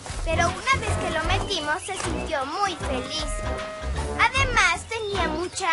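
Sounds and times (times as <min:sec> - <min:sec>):
calf mooing as it is led to its mother: 0:00.3 - 0:01.4, 0:02.6 - 0:04.1
speech: 0:01.5 - 0:05.7.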